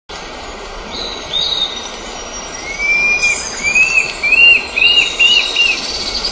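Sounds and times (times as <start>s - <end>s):
Tufted antshrike Mackenziaena severa song in Urugua-í Provincial Park: 0.9s - 6.2s
steady high insect-like drone: 1.7s - 5.2s.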